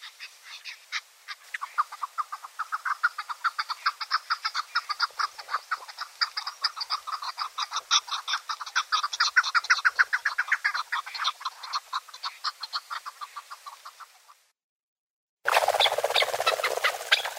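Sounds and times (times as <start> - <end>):
Chukar partridge Alectoris chukar chattering clucks: 0.0 - 14.4, 15.5 - 17.3
Chukar partridge harsh overlapping notes: 15.5 - 17.3.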